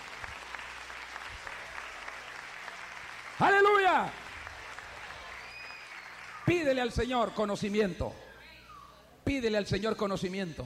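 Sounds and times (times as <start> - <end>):
church audience applauding loudly: 0.0 - 7.0
speech: 3.4 - 4.2, 6.6 - 8.2, 9.3 - 10.6.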